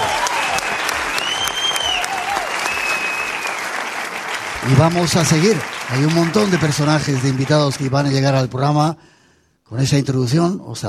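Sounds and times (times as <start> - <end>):
scattered whistles from audience: 0.0 - 4.0
audience applause: 0.0 - 8.2
speech: 4.7 - 9.1, 9.7 - 10.8.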